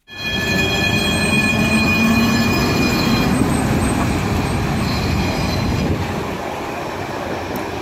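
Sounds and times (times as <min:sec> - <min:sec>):
thin high metallic whining tones of a tram: 0:00.0 - 0:06.1
tram wheels and motor rumbling on rails: 0:00.1 - 0:07.8.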